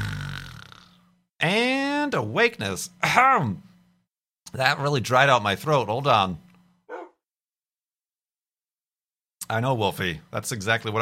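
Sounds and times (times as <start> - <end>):
speech: 1.4 - 3.7, 4.5 - 6.4, 9.5 - 11.0
dog barking: 6.9 - 7.2.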